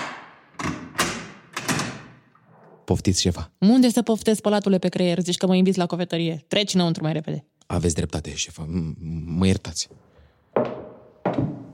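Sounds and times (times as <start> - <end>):
door being unlocked and opened: 0.0 - 2.8
speech: 2.9 - 10.1.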